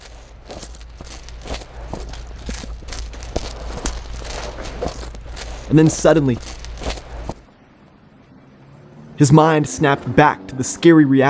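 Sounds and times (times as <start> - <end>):
coins jingling in a pocket: 0.0 - 7.4
low rumbling background: 0.0 - 8.2
speech: 5.7 - 6.5, 9.2 - 11.2.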